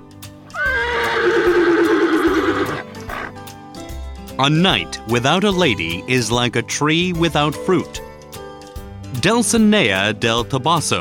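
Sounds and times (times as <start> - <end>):
horse whinnying loudly: 0.5 - 3.4
speech: 4.4 - 8.0, 9.2 - 10.9.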